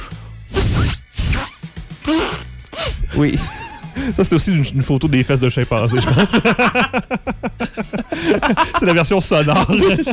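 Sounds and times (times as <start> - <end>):
man trying and failing to whistle very loudly: 0.5 - 3.0
laughter: 3.2 - 4.2, 5.7 - 10.1
speech: 3.2 - 10.1.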